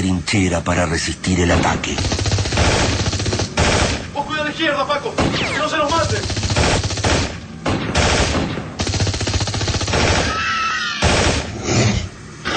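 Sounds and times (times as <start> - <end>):
speech: 0.2 - 3.0, 4.6 - 6.4
machine-gun fire in a radio-drama street battle: 1.5 - 4.1, 5.2 - 10.4, 11.0 - 11.6
rifle shots in a radio-drama street battle: 1.5 - 4.2, 5.2 - 10.4, 11.0 - 11.6.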